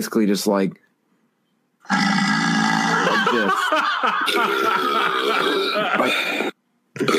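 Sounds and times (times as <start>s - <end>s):
canned fake burp sound effect: 1.8s - 3.2s, 4.3s - 7.1s
laughter: 2.9s - 6.5s.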